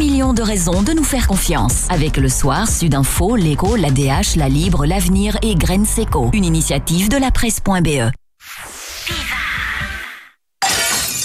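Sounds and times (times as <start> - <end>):
speech: 0.2 - 8.6
glass window pane shattering: 10.6 - 11.2.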